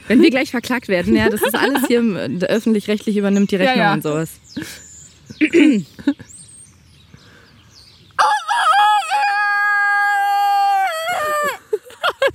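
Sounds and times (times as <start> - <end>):
speech: 0.1 - 6.4
laughter: 1.1 - 2.2, 11.1 - 12.3
person imitating a rooster crowing on a farmyard: 8.2 - 11.7.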